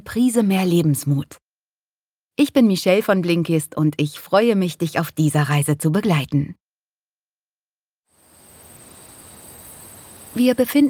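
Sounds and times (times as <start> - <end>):
speech: 0.1 - 1.4, 2.4 - 6.6, 10.3 - 10.8
chorus of crickets chirping: 8.1 - 10.8
soft outdoor hiss: 8.1 - 10.8.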